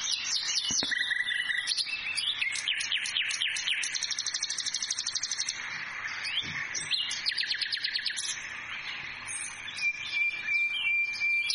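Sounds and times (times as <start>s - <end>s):
nightingale singing: 0.0s - 11.5s.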